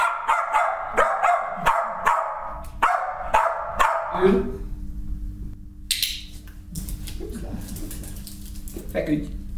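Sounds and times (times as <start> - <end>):
pit bull barking: 0.0 - 4.2
speech: 4.2 - 4.6, 9.1 - 9.4.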